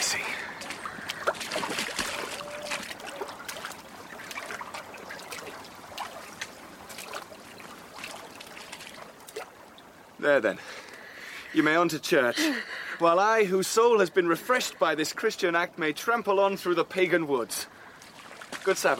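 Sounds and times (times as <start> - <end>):
sloshing in shallow floodwater: 0.0 - 10.2, 17.9 - 18.9
floodwater trickling and splashing: 0.0 - 18.9
speech: 10.2 - 10.8, 11.5 - 17.7, 18.6 - 18.9.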